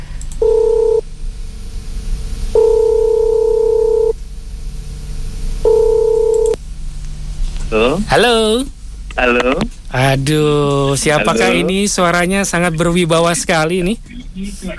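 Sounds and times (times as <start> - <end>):
telephone call ringing out while the caller waits: 0.4 - 1.0, 2.6 - 4.2, 5.6 - 6.6
speech: 7.8 - 14.7.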